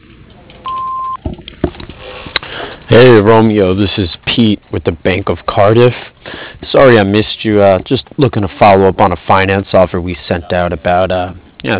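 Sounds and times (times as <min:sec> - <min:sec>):
faint noise: 0:00.0 - 0:11.7
answering machine beep: 0:00.6 - 0:01.2
speech: 0:02.9 - 0:06.1, 0:06.7 - 0:11.7.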